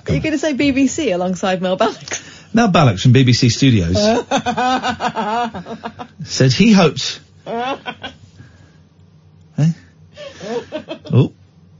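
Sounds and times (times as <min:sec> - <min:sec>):
speech: 0:00.1 - 0:08.2, 0:10.7 - 0:11.4
person laughing breathily: 0:04.0 - 0:06.0, 0:07.5 - 0:08.2, 0:10.3 - 0:11.2.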